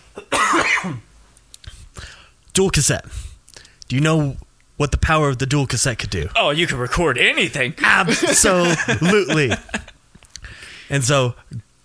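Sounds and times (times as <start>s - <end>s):
loud cough with throaty rasp: 0.2s - 1.0s
speech: 0.8s - 1.1s, 2.6s - 3.3s, 3.9s - 9.7s, 10.9s - 11.5s
laughter: 7.8s - 9.9s.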